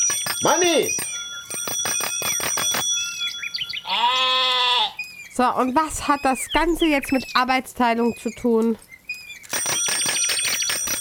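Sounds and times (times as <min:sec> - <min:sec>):
bicycle bell ringing: 0:00.0 - 0:04.0, 0:09.5 - 0:10.9
speech: 0:00.1 - 0:02.0, 0:05.4 - 0:08.9.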